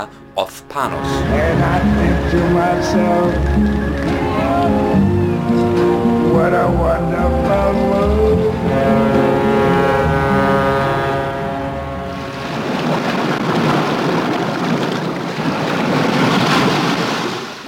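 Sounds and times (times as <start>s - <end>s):
speech: 0.0s - 3.8s, 6.4s - 7.8s
low sustained horn-like drone: 0.9s - 3.5s, 4.2s - 12.7s
waves breaking on a beach in St. Lucia in the Caribbean: 12.3s - 17.6s.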